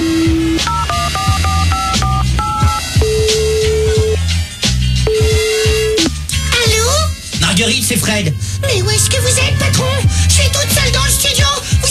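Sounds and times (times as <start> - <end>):
low rhythmic background: 0.0 - 11.9
mobile phone keypad tones from a number being dialed: 0.7 - 4.2, 5.1 - 6.0.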